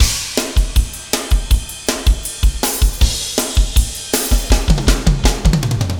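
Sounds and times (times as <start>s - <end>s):
four bar drum fill: 0.0s - 5.9s.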